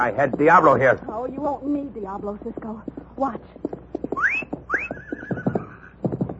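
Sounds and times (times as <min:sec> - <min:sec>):
speech: 0:00.0 - 0:04.5
quick horse hoofbeats: 0:00.0 - 0:06.3
horse letting out shrill rising whinnies: 0:04.1 - 0:06.0.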